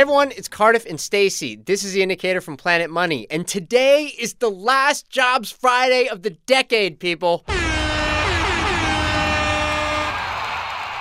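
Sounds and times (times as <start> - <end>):
speech: 0.0 - 7.8
loud sustained air horn blast: 7.5 - 10.9.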